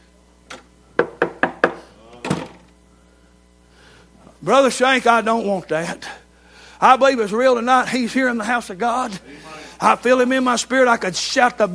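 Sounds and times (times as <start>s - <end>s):
sharp knocks on a door: 1.0s - 1.8s
speech: 4.5s - 6.2s, 6.8s - 11.7s.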